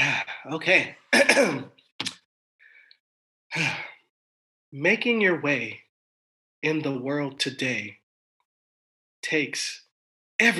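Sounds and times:
speech: 0:00.4 - 0:02.1, 0:03.5 - 0:03.8, 0:04.7 - 0:05.8, 0:06.6 - 0:08.0, 0:09.2 - 0:09.8, 0:10.4 - 0:10.5
person clearing throat: 0:01.2 - 0:01.8.

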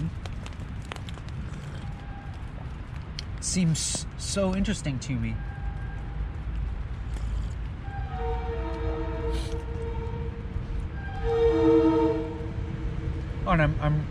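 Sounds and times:
steady low rumble of outdoor noise: 0:00.0 - 0:14.0
speech: 0:03.4 - 0:05.5
train whistle blowing: 0:07.8 - 0:12.7.

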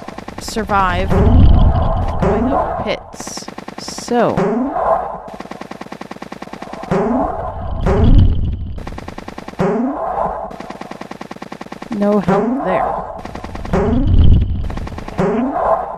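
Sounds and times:
retro video game cannon blasts: 0:00.0 - 0:15.8
loud rapid rattling pulse: 0:00.0 - 0:15.9
speech: 0:00.4 - 0:05.4, 0:12.0 - 0:14.2.

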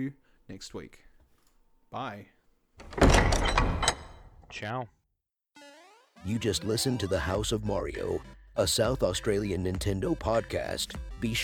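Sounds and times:
speech: 0:00.0 - 0:01.1, 0:01.9 - 0:03.7, 0:04.5 - 0:05.0, 0:06.2 - 0:11.4
sliding doors closing with a rumble and clunks: 0:02.8 - 0:04.3.

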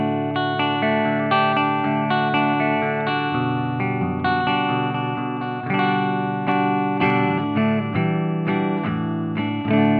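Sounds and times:
electric guitar strumming chords through an amp's clean channel without pedals: 0:00.0 - 0:09.9.

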